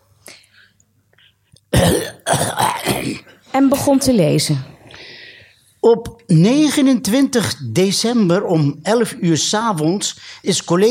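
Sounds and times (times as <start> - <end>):
person clearing throat: 1.7 - 3.4
rough coughs: 1.7 - 3.4
speech: 3.6 - 4.7, 5.8 - 10.8
soft breath: 4.8 - 5.8.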